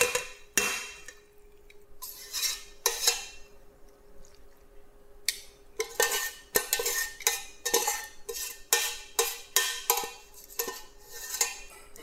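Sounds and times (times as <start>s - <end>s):
metal utensils scraping pesto pasta from a pan into a serving bowl: 0.0s - 1.2s, 2.0s - 3.5s, 5.8s - 12.0s.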